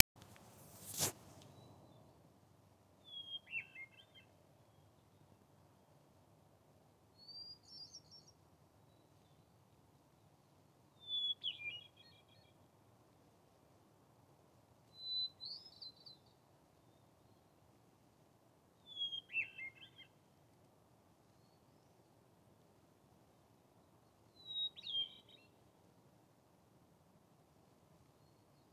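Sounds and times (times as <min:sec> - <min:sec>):
hermit thrush singing: 0:03.0 - 0:05.3, 0:07.2 - 0:09.4, 0:11.0 - 0:12.6, 0:14.9 - 0:17.4, 0:18.8 - 0:20.2, 0:24.3 - 0:25.6.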